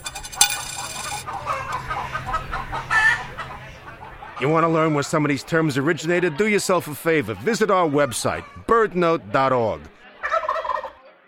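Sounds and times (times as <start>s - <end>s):
several chickens clucking: 0.0s - 11.0s
laughter: 1.2s - 10.4s
speech: 4.4s - 9.9s.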